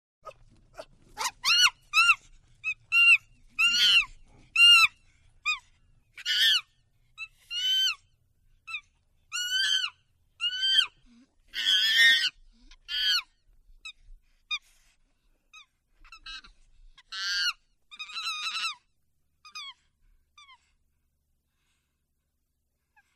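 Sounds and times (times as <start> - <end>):
chimpanzee screaming: 1.2 - 4.9, 6.2 - 6.7, 7.5 - 8.0, 8.7 - 12.3, 17.1 - 18.8.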